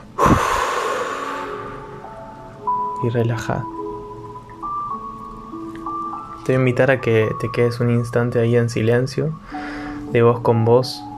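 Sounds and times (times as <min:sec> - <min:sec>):
deep exhale through the mouth during guided breathing meditation: 0:00.0 - 0:02.0
faint sustained musical tones: 0:00.0 - 0:11.1
speech: 0:03.0 - 0:03.8, 0:06.5 - 0:11.1.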